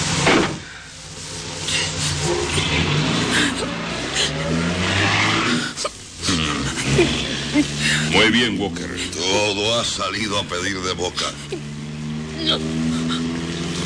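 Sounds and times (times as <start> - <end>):
car engine starting and revving as the car speeds away: 0.0 - 13.8
speech: 8.1 - 11.7, 12.4 - 13.0.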